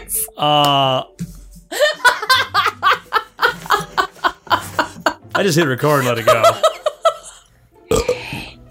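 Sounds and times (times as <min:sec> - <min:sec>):
speech: 0:00.4 - 0:01.2, 0:05.4 - 0:06.7
laughter: 0:01.7 - 0:05.2, 0:05.9 - 0:07.4
person burping: 0:07.9 - 0:08.6.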